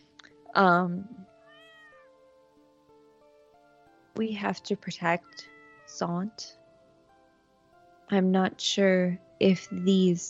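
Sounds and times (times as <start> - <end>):
speech: 0.5 - 1.2, 4.2 - 6.6, 8.1 - 10.2
cat meowing: 1.5 - 2.0.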